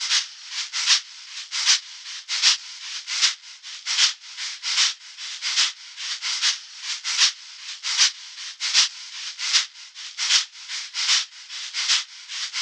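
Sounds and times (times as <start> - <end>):
lo-fi shaker drum loop: 0.0 - 12.6.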